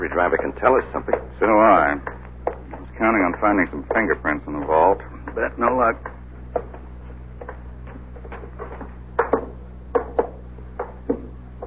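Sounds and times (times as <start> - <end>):
speech: 0.0 - 2.1, 3.0 - 6.6
steady low hum: 0.0 - 11.6
knocking on the front door of a small house with a door knocker: 9.2 - 11.3.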